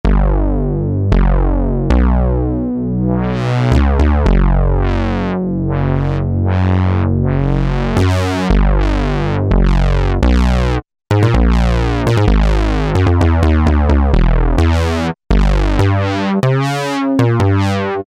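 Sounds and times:
analog bass synth: 0:00.0 - 0:18.0.

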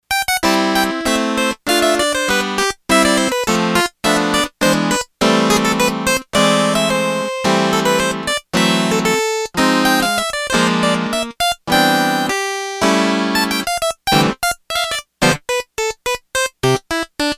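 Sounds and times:
Yamaha TX802 harpsichord patch: 0:00.1 - 0:17.3.

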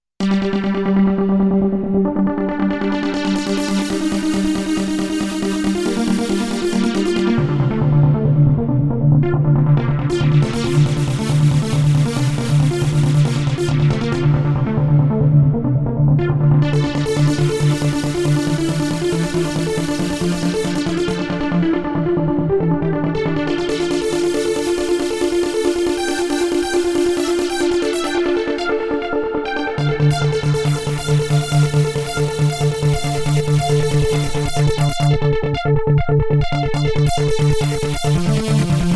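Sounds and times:
euphoric trance music: 0:00.2 - 0:38.9.

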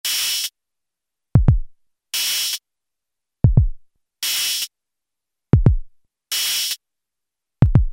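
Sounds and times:
drum machine beat on a synthesizer: 0:00.1 - 0:00.5, 0:01.4 - 0:02.6, 0:03.4 - 0:04.7, 0:05.6 - 0:06.8, 0:07.6 - 0:07.9.

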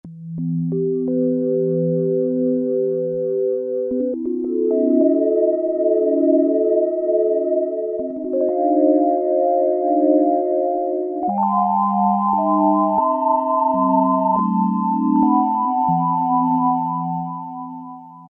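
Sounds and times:
Roland Juno-60 Space Chime factory preset synthesizer chime: 0:00.7 - 0:18.2.

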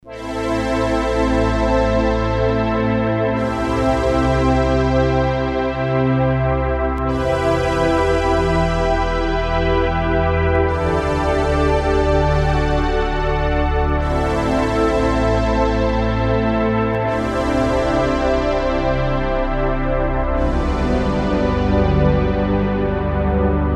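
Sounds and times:
soft synth orchestra on a digital synthesizer: 0:00.0 - 0:23.7.

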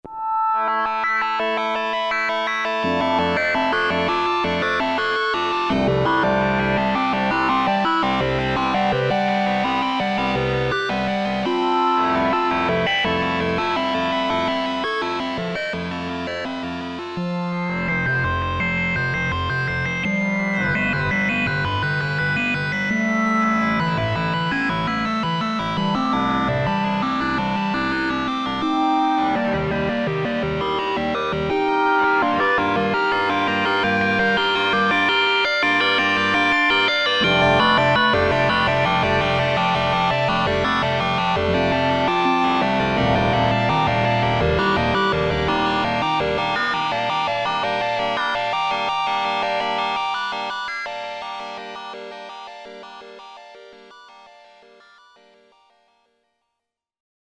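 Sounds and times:
Roland Jupiter-8 synthesizer factory patch: 0:00.0 - 0:55.7.

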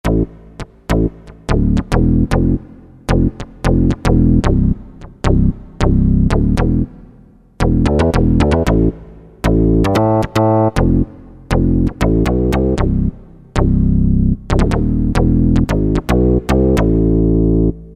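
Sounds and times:
synth bass from a sound module: 0:00.0 - 0:17.9.

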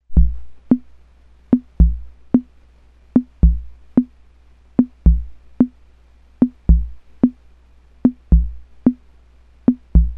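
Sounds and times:
western rhythm on Ace Tone Rhythm Ace FR-2L drum machine: 0:00.0 - 0:02.6, 0:03.2 - 0:04.2, 0:04.8 - 0:05.8, 0:06.4 - 0:07.4, 0:08.0 - 0:09.0, 0:09.7 - 0:10.1.

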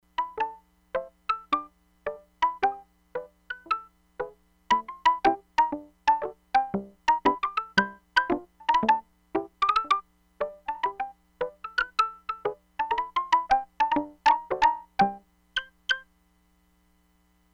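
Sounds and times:
Hammond organ percussion on a Crumar Bit 99: 0:00.2 - 0:16.0.

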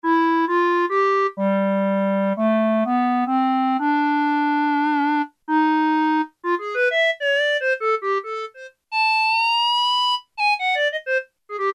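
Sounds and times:
synthesized clarinet: 0:00.0 - 0:11.7.

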